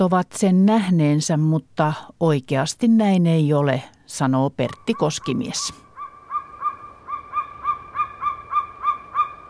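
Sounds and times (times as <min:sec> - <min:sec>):
speech: 0:00.0 - 0:05.8
golden eagle yelping calls: 0:04.7 - 0:09.4.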